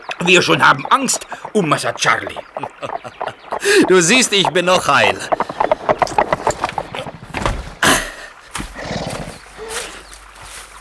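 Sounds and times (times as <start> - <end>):
horse hooves clopping: 0.0 - 10.7
speech: 0.2 - 5.4
laughter: 0.3 - 5.4.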